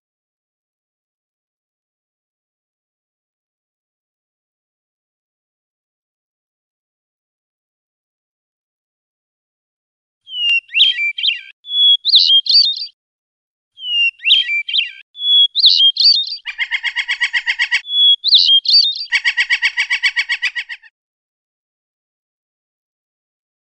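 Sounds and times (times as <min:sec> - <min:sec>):
Oriental magpie-robin singing rolling song: 0:10.3 - 0:13.0, 0:13.8 - 0:20.9.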